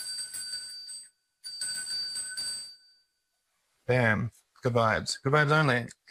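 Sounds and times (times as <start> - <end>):
small cleansing bell ringing: 0.0 - 3.3
speech: 3.9 - 6.0.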